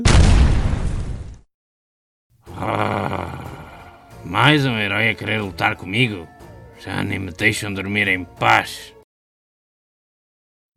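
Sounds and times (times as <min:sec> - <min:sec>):
loud explosion sound effect: 0:00.0 - 0:01.4
rumbling blast of debris-like noise: 0:00.0 - 0:01.4
speech: 0:04.3 - 0:08.9.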